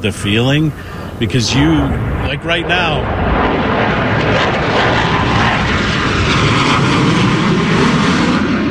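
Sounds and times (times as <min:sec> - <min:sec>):
speech: 0:00.0 - 0:04.5
low-flying airplanes roaring overhead: 0:00.0 - 0:08.6.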